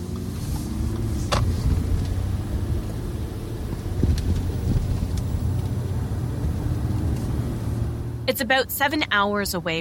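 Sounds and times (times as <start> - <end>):
car road noise rumble driving through Quebec's eastern townships: 0.0 - 9.7
wind noise from a driving car: 0.4 - 8.0
speech: 8.3 - 9.7.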